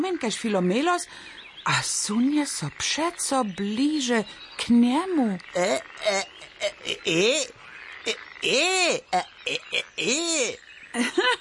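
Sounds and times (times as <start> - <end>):
speech: 0.0 - 11.3
frog croaking: 2.4 - 11.2.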